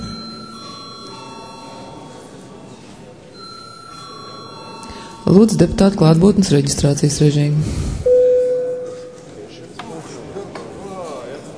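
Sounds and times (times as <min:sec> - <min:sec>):
parliament chamber electric bell ringing: 0:00.0 - 0:02.3, 0:03.4 - 0:05.8, 0:08.1 - 0:09.2
faint murmur of room noise in the hall: 0:00.0 - 0:11.5
speech: 0:05.2 - 0:08.1.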